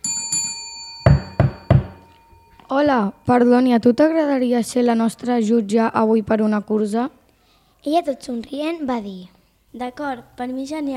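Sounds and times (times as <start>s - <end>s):
ringing bell-like tone: 0.0s - 3.9s
knocking on a house door: 1.1s - 2.1s
speech: 2.7s - 7.2s, 7.8s - 10.9s.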